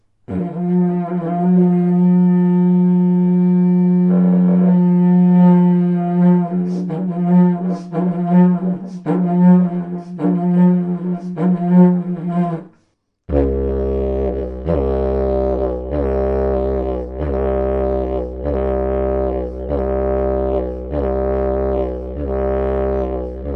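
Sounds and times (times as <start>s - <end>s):
didgeridoo: 0.3s - 12.7s, 13.3s - 23.5s.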